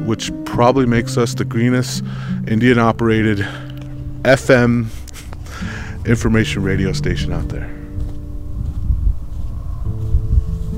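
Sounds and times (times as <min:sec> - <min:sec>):
speech: 0:00.1 - 0:05.0, 0:06.1 - 0:07.8
wind on a hilltop buffeting the microphone: 0:04.0 - 0:10.7.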